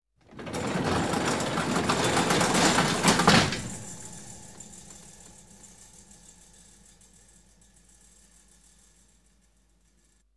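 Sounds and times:
garage door closing: 0:00.3 - 0:06.0.

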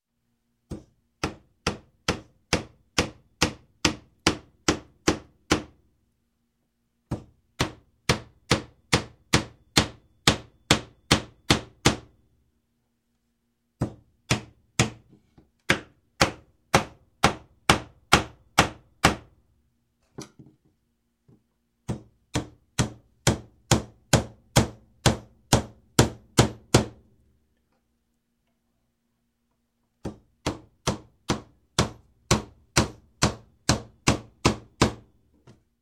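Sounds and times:
hammer hammering nails into wood in construction: 0:00.7 - 0:05.8, 0:07.1 - 0:12.2, 0:13.8 - 0:19.4, 0:21.9 - 0:27.0, 0:30.0 - 0:35.1.

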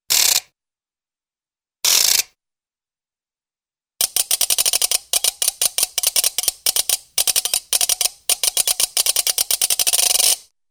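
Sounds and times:
cartoon metallic ratchet-like clicks: 0:04.0 - 0:10.4.

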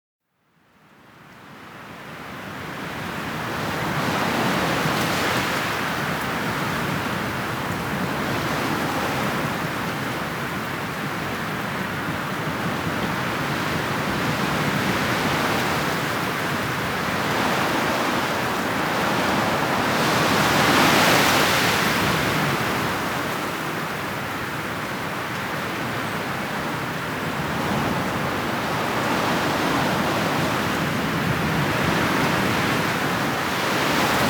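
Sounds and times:
wind in the mountains: 0:00.4 - 0:34.2.

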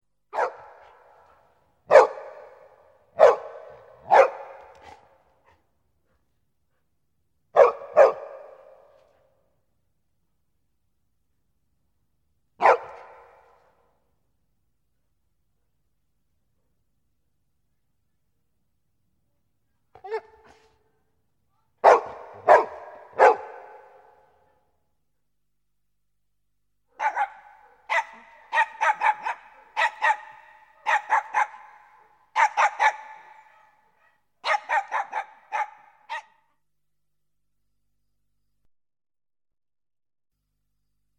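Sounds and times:
dogs barking: 0:00.3 - 0:05.2, 0:07.6 - 0:08.9, 0:12.6 - 0:13.6, 0:21.8 - 0:24.2, 0:27.0 - 0:36.4.

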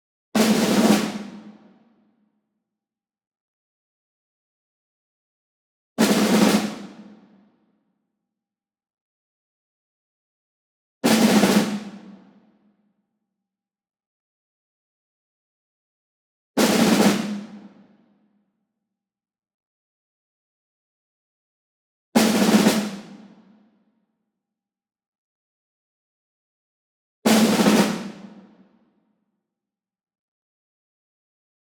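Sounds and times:
ensemble snare drum group roll, medium: 0:00.4 - 0:01.6, 0:06.0 - 0:07.2, 0:11.0 - 0:12.2, 0:16.6 - 0:17.7, 0:22.2 - 0:23.3, 0:27.3 - 0:28.5.

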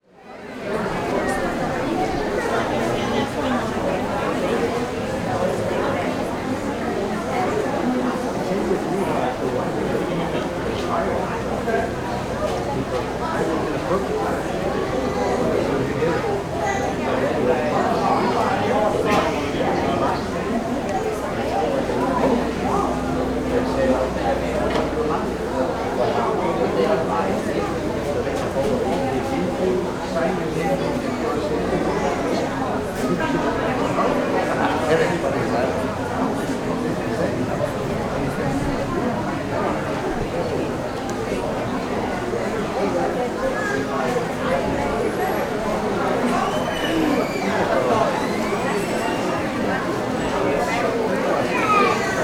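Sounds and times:
walla in a clinic or hospital waiting room: 0:00.2 - 0:52.2.

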